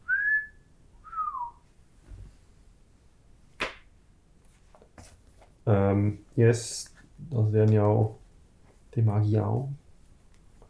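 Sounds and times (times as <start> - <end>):
person whistling two short tones: 0.0 - 1.6
speech: 5.7 - 8.2, 9.0 - 9.8.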